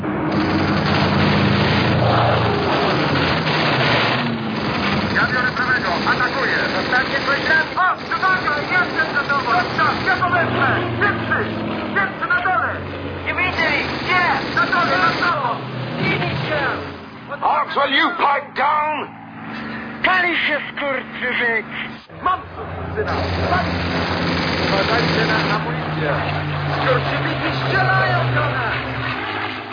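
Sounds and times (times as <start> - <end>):
bomber aircraft engines droning overhead: 0.0 - 29.7
men talking: 5.0 - 29.1.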